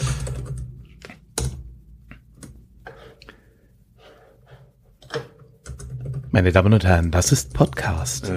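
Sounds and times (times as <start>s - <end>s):
computer keyboard typing: 0.0s - 1.6s, 5.0s - 6.3s
speech: 6.4s - 8.3s.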